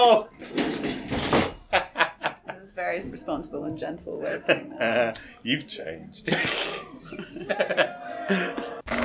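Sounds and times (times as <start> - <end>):
speech: 0.0 - 0.5, 2.9 - 8.7
wooden chair being flipped over: 0.4 - 1.7
laughter: 1.6 - 2.8, 4.2 - 5.4, 6.2 - 8.9.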